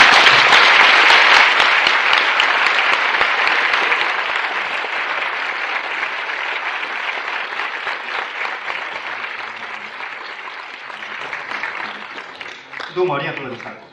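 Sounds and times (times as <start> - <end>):
large audience applauding: 0.0 - 13.9.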